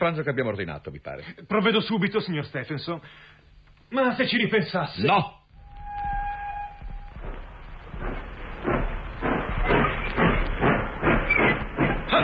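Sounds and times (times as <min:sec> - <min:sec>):
speech: 0:00.0 - 0:05.4
locomotive whistle: 0:05.6 - 0:07.5
locomotive hissing steam chuffs moving off: 0:07.0 - 0:12.2.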